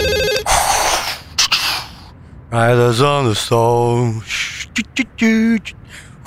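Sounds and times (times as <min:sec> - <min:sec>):
telephone ringing with an electronic trill: 0:00.0 - 0:00.5
speech: 0:02.5 - 0:06.1.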